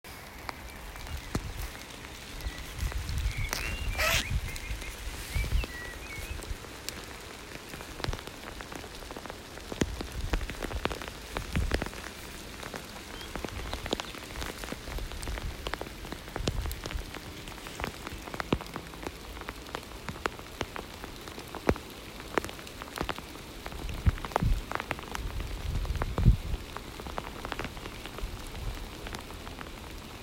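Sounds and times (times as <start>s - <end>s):
rain: 0.0s - 30.2s
birdsong: 0.1s - 6.8s, 12.9s - 14.7s
zipper: 3.6s - 4.3s.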